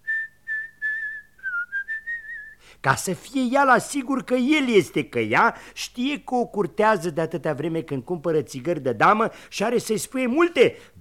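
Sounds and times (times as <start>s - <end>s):
person whistling a tune: 0.0s - 2.6s
speech: 2.8s - 10.9s.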